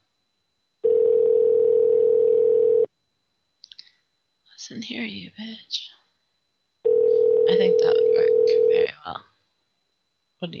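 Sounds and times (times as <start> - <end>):
telephone dial tone while calling back a number: 0.8 - 2.9, 6.9 - 7.5
speech: 4.7 - 6.0, 7.5 - 9.3, 10.4 - 10.5.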